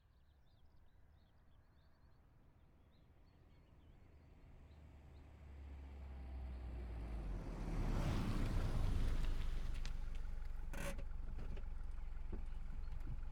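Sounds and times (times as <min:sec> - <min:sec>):
2003 VW Polo pulling up fast, stopping and idling, exterior: 0:05.8 - 0:13.2.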